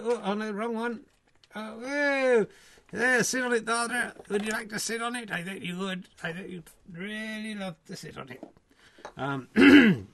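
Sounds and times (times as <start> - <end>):
speech: 0.0 - 10.1
person clearing throat with a guttural cough: 9.6 - 10.1.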